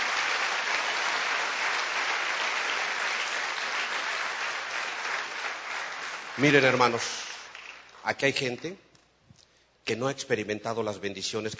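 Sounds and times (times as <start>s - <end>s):
audience applauding: 0.0s - 8.0s
speech: 6.4s - 7.3s, 8.0s - 8.8s, 9.9s - 11.5s.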